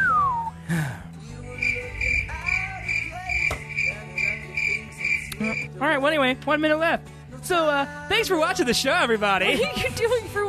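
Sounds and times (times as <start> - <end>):
cricket chirping: 1.5 - 5.7
speech: 5.9 - 10.4.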